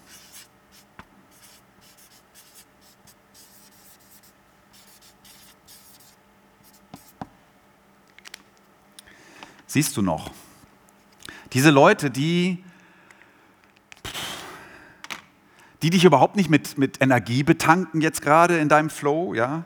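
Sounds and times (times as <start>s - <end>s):
pen scratching while writing by hand: 0.0s - 7.2s
speech: 9.7s - 10.4s, 11.6s - 12.7s, 15.8s - 19.6s.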